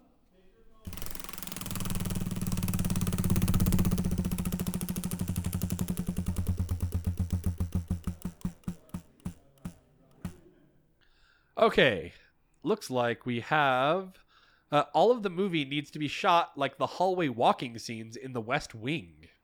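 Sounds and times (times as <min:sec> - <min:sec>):
spun wheel clicking: 0:00.8 - 0:10.4
speech: 0:11.6 - 0:19.2.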